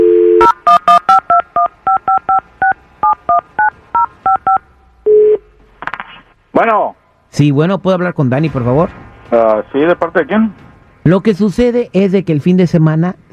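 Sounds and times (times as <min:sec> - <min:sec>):
low telephone tone: 0:00.0 - 0:00.8
telephone dial tone: 0:00.0 - 0:01.0
touch-tone keypad beeps as a phone number is dialed: 0:00.1 - 0:05.2
speech: 0:06.6 - 0:13.3.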